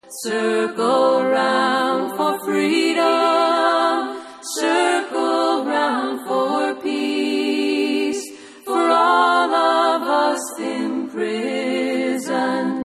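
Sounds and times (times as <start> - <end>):
people chanting in a circle: 0.0 - 12.8.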